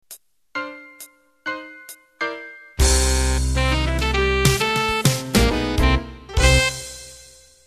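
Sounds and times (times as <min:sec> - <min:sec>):
club jazz music ending: 0:00.6 - 0:07.6.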